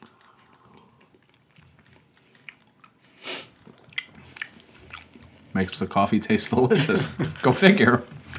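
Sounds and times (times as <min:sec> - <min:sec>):
wet mouth sounds: 0:00.0 - 0:05.5
chewing sticky Finnish salty licorice candy: 0:00.0 - 0:05.6
speech: 0:05.6 - 0:08.2
laughter: 0:06.2 - 0:08.1.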